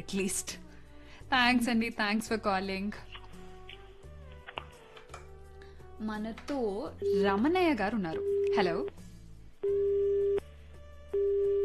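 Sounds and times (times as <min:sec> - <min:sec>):
speech: 0:00.0 - 0:00.6, 0:01.3 - 0:03.1, 0:06.0 - 0:09.0
telephone busy signal beeps after a dropped call: 0:09.6 - 0:10.4, 0:11.2 - 0:11.6.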